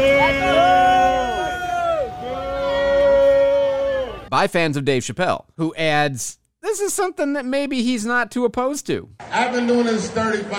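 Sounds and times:
crowd booing and jeering outside a venue: 0.0s - 4.3s
speech: 4.3s - 10.5s.

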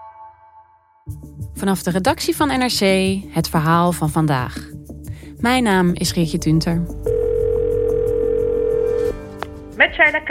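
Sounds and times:
speech: 1.1s - 4.8s, 5.4s - 7.1s, 10.0s - 10.2s
telephone call ringing tone: 7.1s - 9.1s.

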